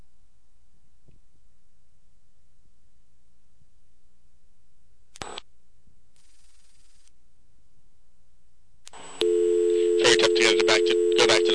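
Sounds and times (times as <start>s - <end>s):
payphone clicks as a toll call is dialed: 9.2s - 11.5s
steady low payphone call tone: 9.2s - 11.5s
wordless voice-like sound: 10.0s - 11.5s.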